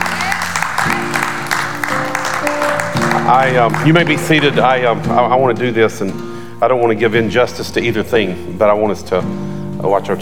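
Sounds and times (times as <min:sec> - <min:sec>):
audience applause: 0:00.0 - 0:04.8
sustained organ-like chords: 0:00.0 - 0:06.4
speech: 0:03.3 - 0:10.2.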